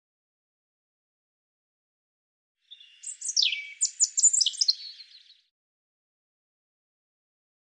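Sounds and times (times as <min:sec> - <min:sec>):
European robin singing: 0:02.6 - 0:05.5.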